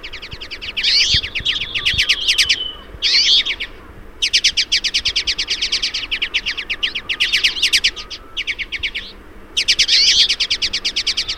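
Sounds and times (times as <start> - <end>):
flock of twites chirping and twittering: 0.0 - 11.3.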